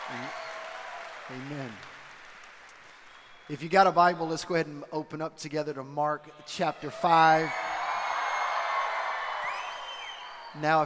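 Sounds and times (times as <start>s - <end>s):
high whoops from the church audience: 0.0s - 1.3s, 7.5s - 10.5s
large church audience cheering: 0.0s - 3.5s, 6.9s - 10.8s
speech: 0.1s - 0.4s, 1.3s - 1.9s, 3.5s - 7.8s, 10.6s - 10.8s.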